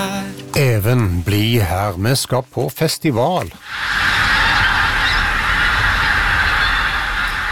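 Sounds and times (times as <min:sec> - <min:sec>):
speech: 0:00.6 - 0:04.2
large flocks of pink-footed geese honking in Beitstad, Trøndelag: 0:03.6 - 0:07.5.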